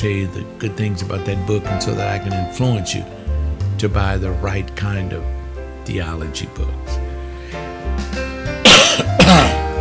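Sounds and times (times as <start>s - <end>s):
speech: 0.0s - 3.2s, 3.8s - 7.6s
person clearing throat: 8.6s - 9.7s.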